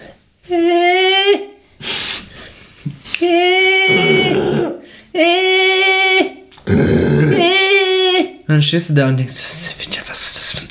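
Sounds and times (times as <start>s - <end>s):
speech: 0.5s - 1.5s, 8.6s - 10.6s
person imitating an alpaca's call: 3.2s - 8.3s.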